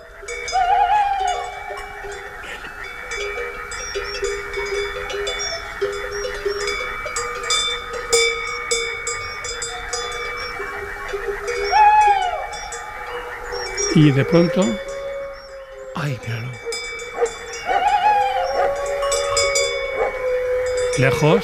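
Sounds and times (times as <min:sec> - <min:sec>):
wolf howling: 0:00.0 - 0:07.0, 0:09.0 - 0:21.4
livestock bells jangling: 0:00.0 - 0:21.4
tawny owl hooting: 0:00.1 - 0:02.8, 0:10.4 - 0:21.4
speech: 0:14.0 - 0:14.9, 0:16.0 - 0:16.7, 0:21.0 - 0:21.4
dog barking: 0:17.1 - 0:19.0.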